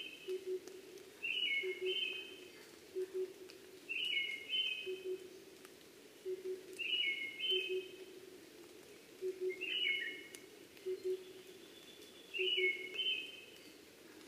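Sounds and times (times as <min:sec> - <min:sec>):
Brown-headed thrush whistled song: 0:01.2 - 0:02.4, 0:03.9 - 0:05.2, 0:06.3 - 0:08.0, 0:09.4 - 0:10.3, 0:10.9 - 0:13.8.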